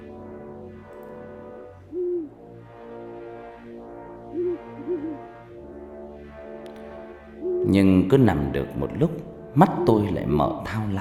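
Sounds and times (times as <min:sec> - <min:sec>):
steady low layered drone: 0:00.0 - 0:11.0
owl hooting in the night: 0:01.9 - 0:02.4, 0:04.3 - 0:05.3, 0:07.4 - 0:07.8
speech: 0:07.7 - 0:11.0.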